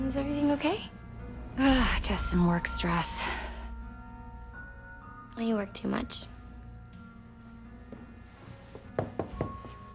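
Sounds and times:
speech: 0.1 - 1.0, 1.6 - 3.5, 5.4 - 6.3
firm knocks on a door: 9.0 - 9.7.

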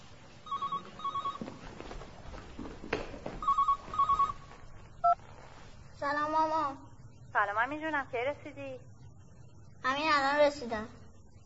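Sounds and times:
telephone ringing in an apartment with trilling electronic bursts: 0.4 - 1.5, 3.4 - 5.2
speech: 7.6 - 8.9, 9.9 - 11.0.

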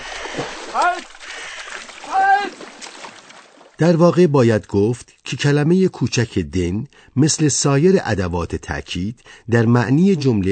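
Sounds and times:
water churning and splashing: 0.0 - 3.9
speech: 0.7 - 1.2, 3.8 - 10.4
people crying out: 2.1 - 2.6.

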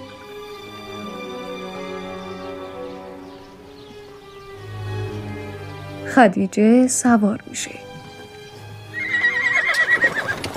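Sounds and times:
speech: 6.1 - 7.9
horse whinnying: 8.9 - 10.5
clip-clop of hooves of horse-drawn carriages: 9.1 - 10.5.

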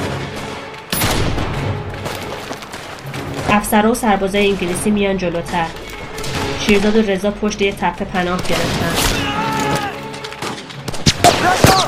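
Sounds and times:
gunfire volley: 0.0 - 1.8, 10.4 - 11.8
speech: 3.5 - 5.8, 6.6 - 9.2.

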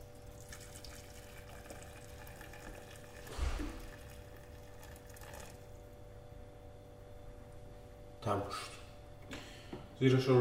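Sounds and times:
boiling water pouring into a cooking pot: 0.0 - 5.8
low hum: 0.0 - 10.4
speech: 8.3 - 8.8, 10.0 - 10.4.

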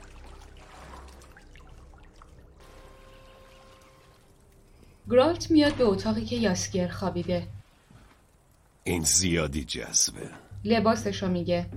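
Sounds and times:
water trickling and dripping as a video game character climbs out of a bathtub: 0.0 - 9.3
speech: 5.1 - 7.6, 8.8 - 11.7.

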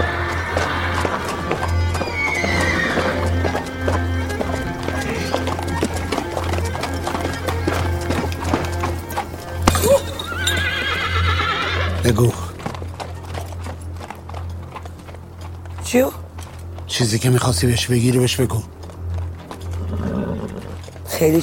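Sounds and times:
horse neighing loudly: 0.0 - 3.5, 9.5 - 12.2, 19.8 - 21.0
ridden horse hooves clip-clopping: 0.0 - 21.4
speech: 17.0 - 18.8, 21.2 - 21.4.

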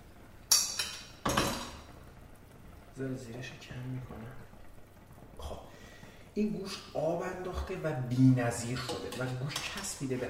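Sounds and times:
metal lid lifted off a cooking pot of stewing meat, clinking: 0.5 - 1.8
speech: 3.0 - 4.6, 6.4 - 10.2.

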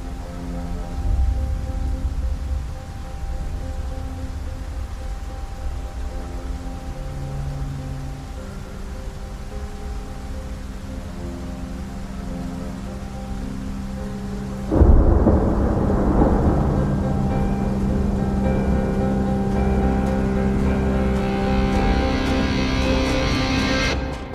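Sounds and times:
deep rolling thunder with a loud crash: 0.0 - 8.4, 14.6 - 23.6
heavy rain pouring: 0.0 - 24.3.

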